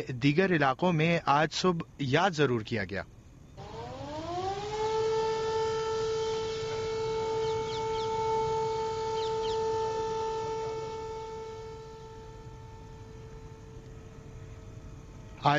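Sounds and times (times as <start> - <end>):
speech: 0.0 - 3.2
civil defense siren in Muzaffarabad Pakistan at an earthquake remembrance: 3.6 - 15.3.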